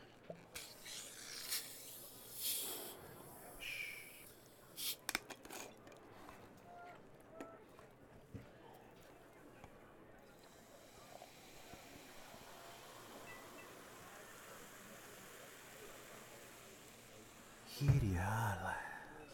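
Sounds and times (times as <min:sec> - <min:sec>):
faint voices murmuring: 0:00.1 - 0:19.3
carbonated drink fizzing: 0:00.6 - 0:05.1, 0:10.4 - 0:18.2.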